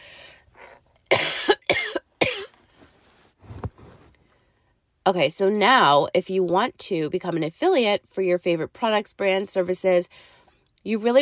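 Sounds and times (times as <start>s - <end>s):
breathing: 0.0s - 0.9s, 4.1s - 4.8s, 10.1s - 10.7s
harsh coughs: 1.1s - 2.6s
speech: 5.1s - 11.2s.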